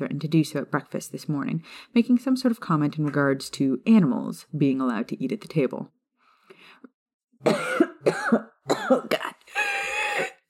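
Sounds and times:
speech: 0:00.0 - 0:06.0, 0:06.8 - 0:10.3
person choking and coughing after breathing in spit: 0:07.4 - 0:10.4.

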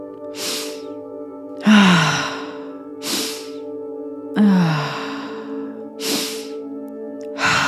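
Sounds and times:
sharp hissing inhales of forceful breathwork: 0:00.3 - 0:00.9, 0:02.0 - 0:03.7, 0:04.9 - 0:06.6.

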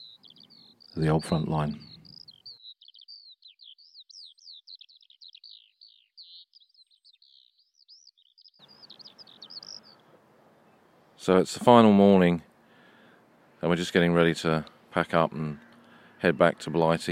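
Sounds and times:
birds singing outdoors: 0:00.0 - 0:17.0
speech: 0:01.0 - 0:01.9, 0:11.3 - 0:12.5, 0:13.6 - 0:15.6, 0:16.2 - 0:17.0.

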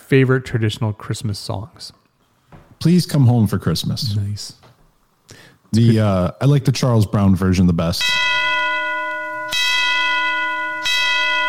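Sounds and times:
speech: 0:00.1 - 0:02.0, 0:02.8 - 0:04.7, 0:05.3 - 0:08.2
church bells tolling: 0:08.0 - 0:11.4.

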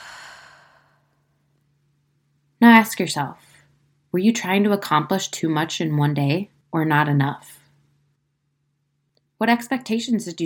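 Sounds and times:
slow deep breath through the nose during a calming pause exercise: 0:00.0 - 0:01.1
speech: 0:02.8 - 0:03.5, 0:04.1 - 0:07.6, 0:09.4 - 0:10.4.

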